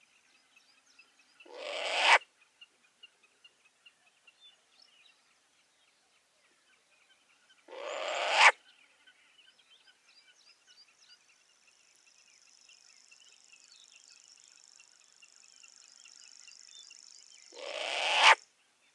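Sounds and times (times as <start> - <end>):
short-eared owl Asio flammeus: 1.4 - 2.2, 7.7 - 8.6, 17.5 - 18.4.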